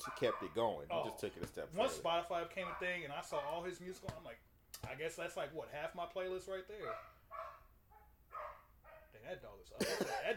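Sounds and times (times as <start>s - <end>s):
dog barking in loud yaps: 0.0s - 1.9s, 2.5s - 3.7s, 6.8s - 9.2s
speech: 0.1s - 7.2s, 9.2s - 10.3s.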